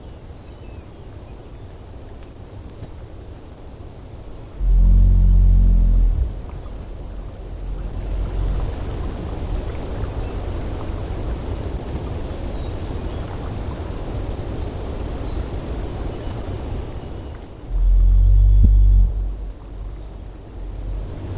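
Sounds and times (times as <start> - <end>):
low-pitched humpback whale calls in Alaska: 4.6 - 9.2, 17.7 - 20.0.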